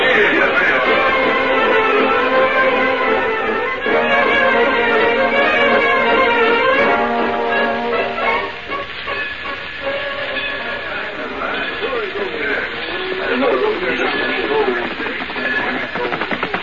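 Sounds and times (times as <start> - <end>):
indistinct voices murmuring: 0.0 - 6.2, 10.1 - 16.6
steam train rolling along the tracks: 0.0 - 16.6.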